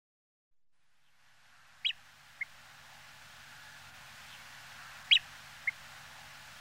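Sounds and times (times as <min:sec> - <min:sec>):
faint hiss: 0:00.7 - 0:06.5
Nordmann's greenshank Tringa guttifer calling: 0:04.8 - 0:05.8.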